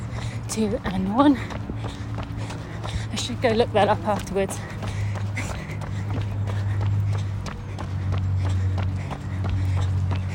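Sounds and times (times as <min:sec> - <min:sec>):
running footsteps: 0:00.0 - 0:10.3
speech: 0:00.5 - 0:02.0, 0:03.2 - 0:04.8.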